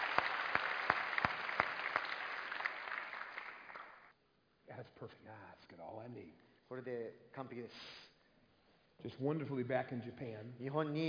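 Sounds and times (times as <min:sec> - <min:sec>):
church audience in Japan applauding: 0:00.0 - 0:04.1
speech: 0:05.0 - 0:08.0, 0:09.0 - 0:11.0.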